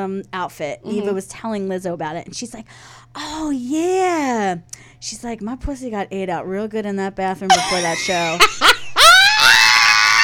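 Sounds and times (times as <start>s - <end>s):
speech: 0.0s - 8.8s
people screaming in excitement: 9.0s - 10.2s.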